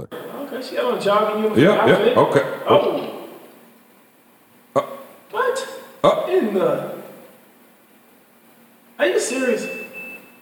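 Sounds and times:
low hum: 0.0 - 10.3
speech: 0.5 - 3.2, 6.4 - 7.0, 9.0 - 9.8
loud high steady electronic alarm tone: 9.3 - 10.3.

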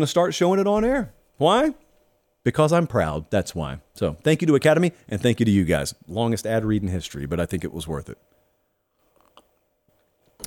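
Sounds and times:
speech: 0.0 - 1.8, 2.4 - 8.3
person sipping a drink: 8.9 - 9.7
wet mouth clicks: 9.0 - 9.6.

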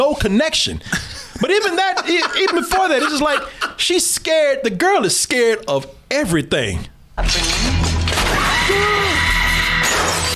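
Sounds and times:
speech: 0.1 - 7.7
laughter: 1.1 - 3.9
glass shattering: 7.2 - 10.3.

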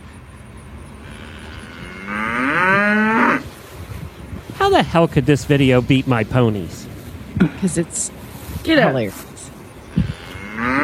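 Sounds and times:
cow mooing: 1.0 - 3.5, 9.9 - 10.8
speech: 4.7 - 6.8, 7.6 - 9.3.

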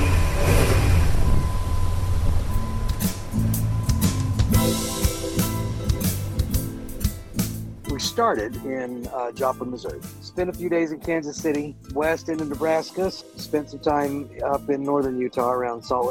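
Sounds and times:
car engine pulling away after refuelling: 0.0 - 7.8
speech: 8.2 - 16.0.

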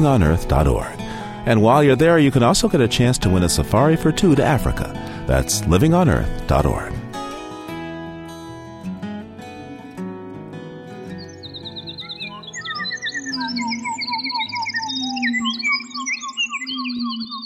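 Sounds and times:
speech: 0.0 - 7.0
studio-altered wood thrush singing in Canadian woods near Quebec: 0.0 - 7.4, 10.7 - 17.4.

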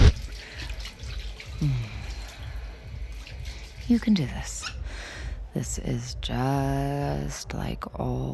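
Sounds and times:
bathroom tap gushing in a steady rushing stream: 0.1 - 4.6
speech: 3.9 - 8.3.

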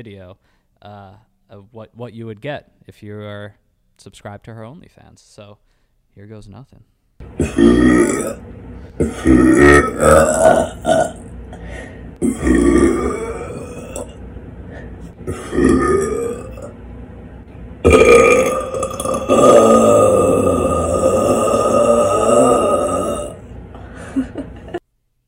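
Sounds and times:
speech: 0.0 - 11.2
loud throaty rumbling burps: 7.2 - 8.4, 9.0 - 14.2, 15.1 - 16.8, 17.8 - 23.5.

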